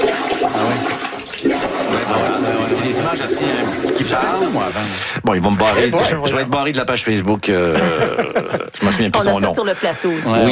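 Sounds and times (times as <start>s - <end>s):
water backing up and surging in a toilet bowl during heavy rain: 0.0s - 4.9s
speech: 3.1s - 10.4s
laughter: 7.5s - 10.4s.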